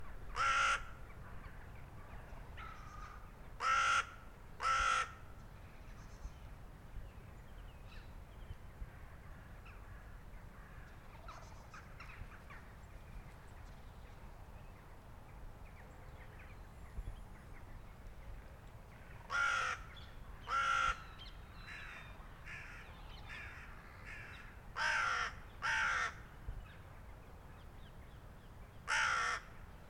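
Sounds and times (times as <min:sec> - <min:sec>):
crows cawing in a cemetery in Kingston London England: 0:00.3 - 0:01.0, 0:02.6 - 0:05.2, 0:19.3 - 0:21.0, 0:21.7 - 0:26.2, 0:28.8 - 0:29.5.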